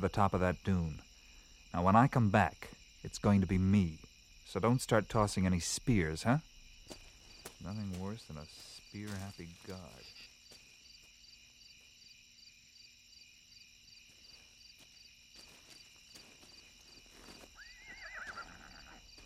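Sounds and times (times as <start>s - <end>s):
speech: 0.0s - 1.0s, 1.7s - 7.0s, 7.6s - 10.3s
crickets chirping: 0.0s - 19.2s
horse neighing: 17.6s - 19.1s.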